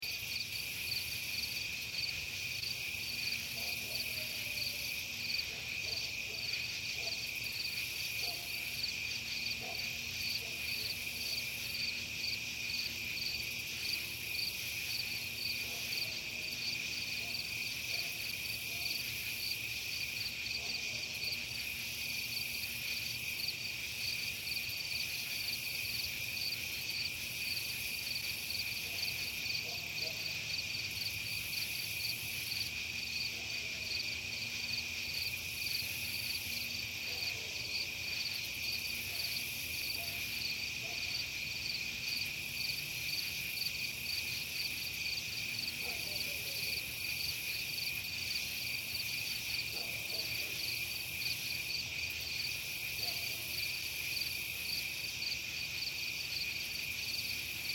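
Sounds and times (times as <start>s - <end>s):
night insects in a subdivision: 0.0s - 57.7s
distant dog: 3.6s - 4.8s, 5.4s - 7.3s, 8.2s - 8.7s, 9.6s - 11.0s, 28.8s - 30.4s, 45.7s - 46.7s, 49.7s - 50.7s.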